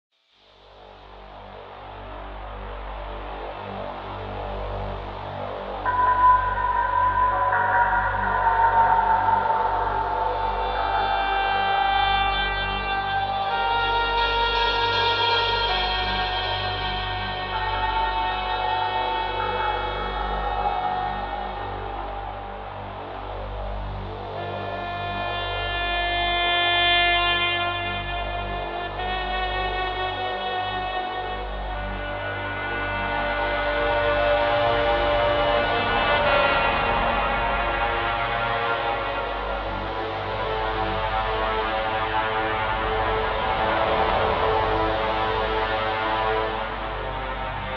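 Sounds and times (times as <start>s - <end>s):
music player: 1.6s - 47.7s.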